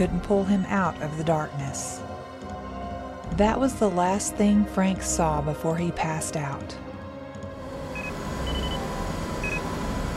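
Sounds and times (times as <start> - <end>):
speech: 0.0 - 2.3, 3.3 - 6.9
short high-pitched electronic beeps in a hospital room: 7.9 - 9.7.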